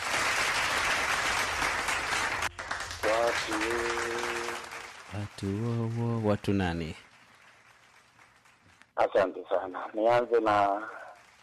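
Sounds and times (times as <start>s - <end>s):
audience applause after a quiz answer: 0.0s - 8.7s
speech: 5.2s - 7.1s, 9.0s - 11.0s.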